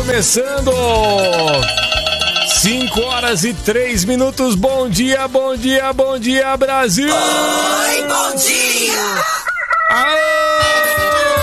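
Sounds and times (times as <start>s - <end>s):
speech: 0.1s - 9.2s
rooster crowing: 7.1s - 11.4s.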